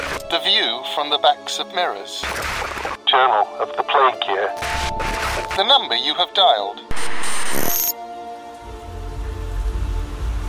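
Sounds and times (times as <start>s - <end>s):
speech: 0.3s - 6.9s
rain falling on a dingy street in central London at midnight: 8.6s - 10.4s.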